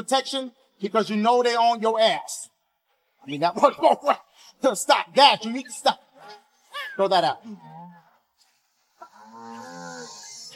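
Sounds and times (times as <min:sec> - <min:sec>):
speech: 0:00.0 - 0:02.5, 0:03.2 - 0:06.4, 0:07.0 - 0:08.0
cow mooing: 0:09.0 - 0:10.5.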